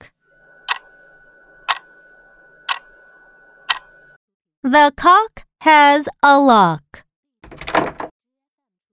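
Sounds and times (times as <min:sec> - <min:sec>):
faint constant hum: 0:00.0 - 0:04.2
clock ticking: 0:03.7 - 0:03.9
speech: 0:04.7 - 0:06.8.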